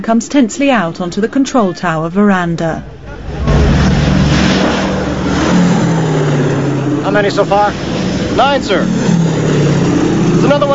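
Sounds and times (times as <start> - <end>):
speech: 0.0 - 2.9, 7.1 - 9.2, 10.4 - 10.7
B-17 propeller planes droning in to land on a runway: 2.4 - 10.7.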